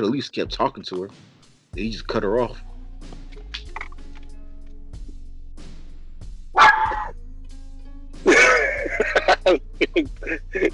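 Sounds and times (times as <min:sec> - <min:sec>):
speech: 0:00.0 - 0:03.2, 0:09.5 - 0:10.7
dog barking: 0:06.6 - 0:07.1
laughter: 0:08.3 - 0:10.7.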